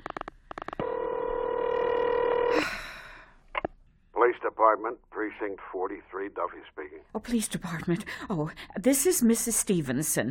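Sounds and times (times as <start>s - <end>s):
long steady telephone tone: 0.8s - 2.8s
speech: 4.3s - 10.2s.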